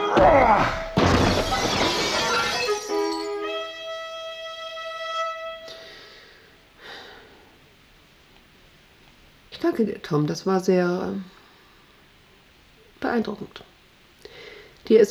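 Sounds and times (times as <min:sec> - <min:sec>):
speech: 0:00.1 - 0:00.9, 0:09.8 - 0:11.4, 0:13.0 - 0:13.7, 0:14.9 - 0:15.0
desk thrown through an office window, heavy crash: 0:00.1 - 0:03.5
office window glass shattering: 0:00.1 - 0:03.5.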